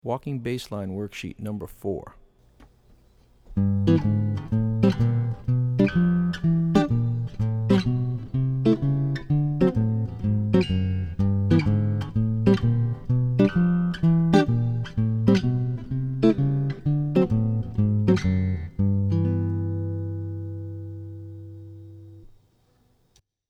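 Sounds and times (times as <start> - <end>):
jazz chording: 3.5 - 22.3
walking bass line: 3.6 - 22.2.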